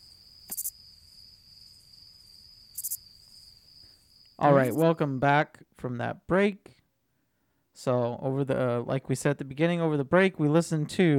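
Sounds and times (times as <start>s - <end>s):
crickets chirping with a steady high-pitched trill: 0.0s - 5.0s
speech: 4.4s - 6.8s, 7.8s - 11.1s.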